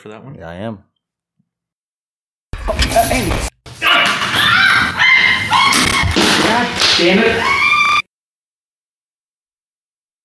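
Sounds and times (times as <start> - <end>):
speech: 0.0 - 0.9, 2.9 - 3.5, 6.5 - 7.6
dog yelping and whining: 3.9 - 6.2.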